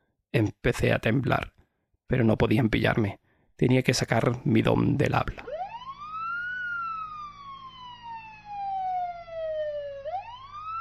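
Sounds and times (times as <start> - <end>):
speech: 0.3 - 5.5
Guardia Civil police siren wailing at night: 5.3 - 10.7.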